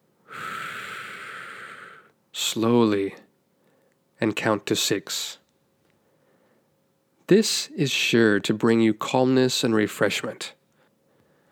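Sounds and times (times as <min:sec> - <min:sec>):
deep breath drawn in through the nose: 0:00.3 - 0:02.1
speech: 0:02.5 - 0:03.3, 0:04.2 - 0:05.4, 0:07.3 - 0:10.6.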